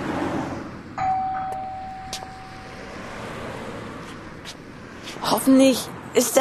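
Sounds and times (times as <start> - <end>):
hum of street traffic outdoors: 0.0 - 6.4
doorbell ringing with an electronic tone: 1.0 - 3.6
speech: 5.4 - 6.4.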